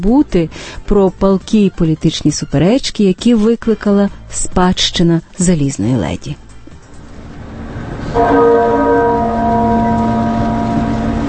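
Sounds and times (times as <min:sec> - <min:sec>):
speech: 0:00.0 - 0:06.4, 0:08.1 - 0:08.8
steady rumble: 0:07.0 - 0:11.2
deep muffled church bell tolling at St Paul's Cathedral in London: 0:08.1 - 0:11.2.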